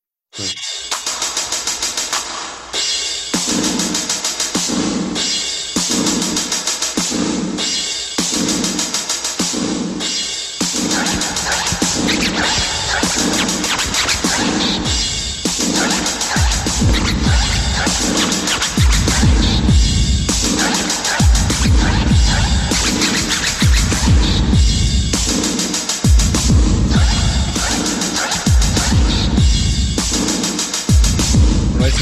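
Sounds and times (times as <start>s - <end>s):
speech: 0.4s - 0.6s
hip-hop track with booming drum-machine beat and heavy kick: 0.4s - 32.0s
sharp record-scratch effects: 10.8s - 24.6s, 26.8s - 29.5s, 31.8s - 32.0s.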